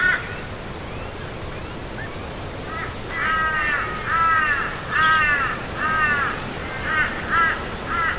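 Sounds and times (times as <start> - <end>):
crows cawing heard from inside a tent: 0.0 - 0.4, 2.6 - 8.1.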